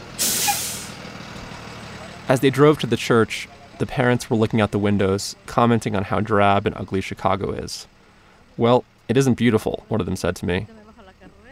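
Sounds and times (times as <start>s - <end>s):
bus air brakes releasing in front of a church: 0.1s - 1.0s
speech: 2.3s - 8.0s, 8.6s - 11.5s.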